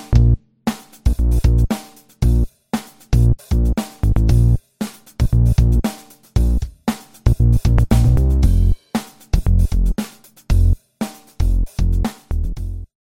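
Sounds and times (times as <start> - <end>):
fat bass: 0.1 - 0.4, 1.1 - 1.7, 2.3 - 2.5, 3.1 - 4.6, 5.2 - 5.8, 6.4 - 6.6, 7.3 - 8.8, 9.4 - 9.9, 10.5 - 10.8, 11.4 - 12.9.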